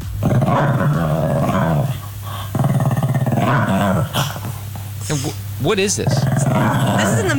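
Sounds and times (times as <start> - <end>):
dog growling and grumbling while rolling on the floor: 0.2 - 5.0, 5.9 - 7.3
speech: 5.1 - 7.3.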